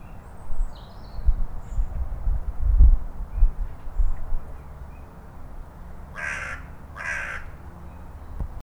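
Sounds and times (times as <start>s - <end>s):
low rumbling and thumping noise: 1.2s - 4.5s
Corvus corone carrion crow cawing hoarse and grating: 6.1s - 7.6s.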